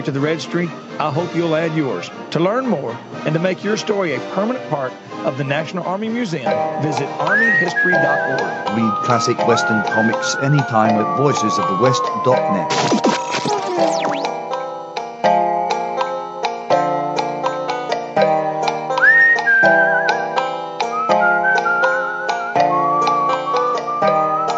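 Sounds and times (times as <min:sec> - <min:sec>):
speech: 0:00.0 - 0:13.1
steady instrumental accompaniment of rhythmic chords: 0:06.4 - 0:24.5
person whistling a tune: 0:07.1 - 0:14.3, 0:19.0 - 0:24.5.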